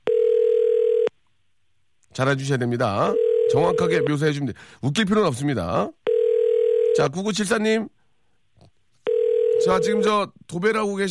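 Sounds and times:
phone ringback tone: 0.0s - 1.1s, 3.1s - 4.1s, 6.1s - 7.0s, 9.0s - 10.1s
speech: 2.2s - 6.0s, 7.0s - 8.0s, 9.6s - 11.1s.

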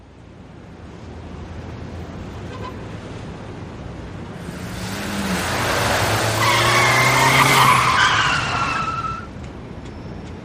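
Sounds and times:
car tires screeching in a long skid at a city street intersection: 4.4s - 9.3s.

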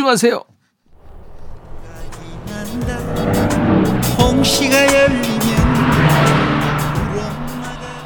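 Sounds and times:
speech: 0.0s - 0.5s, 2.6s - 6.3s
car passing by: 0.9s - 8.0s
music with singing from a passing car: 1.8s - 8.0s.

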